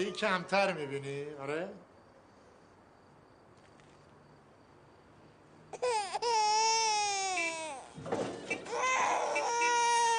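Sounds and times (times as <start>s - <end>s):
speech: 0.0s - 1.9s
young child wailing and sobbing: 5.8s - 7.9s, 8.7s - 10.1s.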